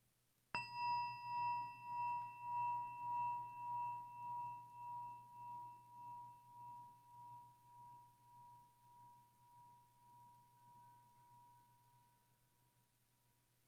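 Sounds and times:
meditation chime ringing: 0:00.6 - 0:08.1.

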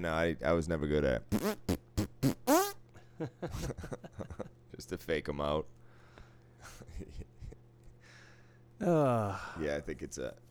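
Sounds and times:
speech: 0:00.0 - 0:02.4, 0:03.2 - 0:05.8, 0:08.8 - 0:10.5
beatboxed mouth fart sounds: 0:01.3 - 0:02.8.

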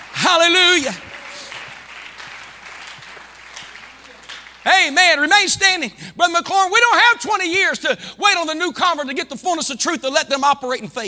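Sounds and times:
audience clapping hands: 0:00.0 - 0:05.0
speech: 0:00.3 - 0:01.1, 0:04.7 - 0:11.0.

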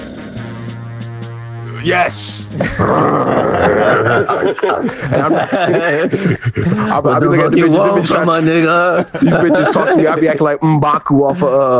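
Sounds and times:
man growling and grunting imitating a rapper's growl: 0:01.8 - 0:05.0
speech: 0:01.8 - 0:11.7
laughter: 0:02.5 - 0:11.7.

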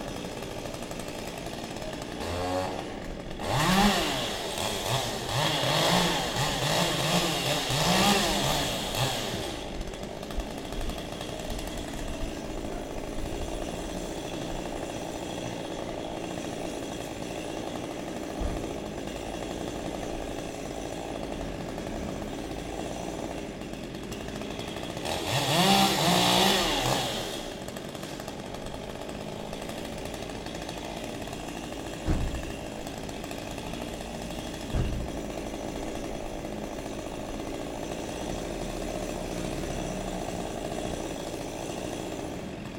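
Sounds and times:
chainsaw cutting through tree branches in a built-up area: 0:00.0 - 0:42.7
sharp knocks: 0:32.0 - 0:32.7, 0:34.6 - 0:35.3.

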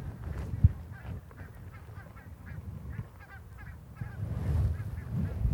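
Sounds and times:
geese honking in flight during migration: 0:00.1 - 0:05.4.

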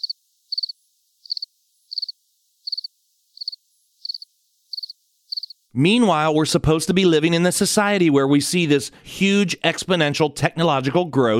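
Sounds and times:
crickets chirping: 0:00.0 - 0:05.7
speech: 0:05.8 - 0:11.3.

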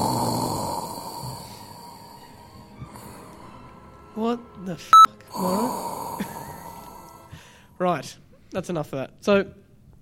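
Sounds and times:
heavy breathy exhale into a covered microphone imitating a masked villain: 0:00.0 - 0:03.5, 0:05.4 - 0:07.8
speech: 0:04.2 - 0:06.4, 0:07.8 - 0:09.6.

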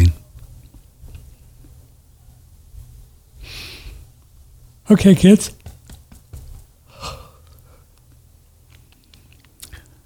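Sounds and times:
speech: 0:04.9 - 0:05.6
yawn: 0:06.9 - 0:07.6.

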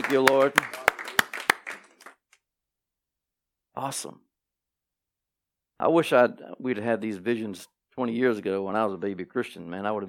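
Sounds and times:
audience clapping: 0:00.0 - 0:02.4
speech: 0:00.1 - 0:00.8, 0:03.8 - 0:04.3, 0:05.8 - 0:10.0.

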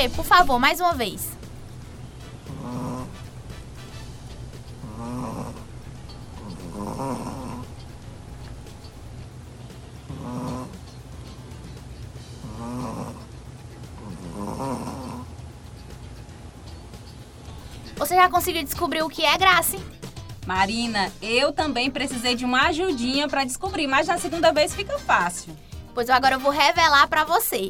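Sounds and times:
speech: 0:00.0 - 0:01.4, 0:06.8 - 0:07.4, 0:18.2 - 0:27.6
small dog snoring with raspy buzzing snores: 0:02.4 - 0:09.0, 0:10.0 - 0:11.0, 0:12.2 - 0:15.4.

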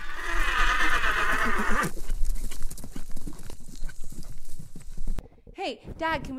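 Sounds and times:
horse whinnying: 0:00.0 - 0:02.1
horse hooves clip-clopping on a hard surface: 0:01.3 - 0:06.3
speech: 0:01.6 - 0:02.0, 0:05.7 - 0:06.3.

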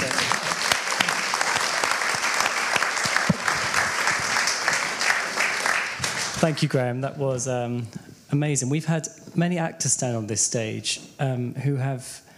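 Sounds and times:
audience applauding after a stage performance: 0:00.0 - 0:06.7
speech: 0:06.4 - 0:12.3.

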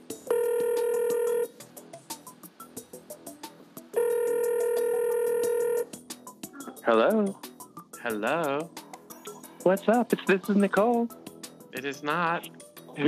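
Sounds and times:
telephone ringback tone after a call is dialed: 0:00.3 - 0:01.6, 0:04.0 - 0:06.0
speech: 0:06.9 - 0:08.8, 0:09.6 - 0:11.2, 0:11.8 - 0:13.0.

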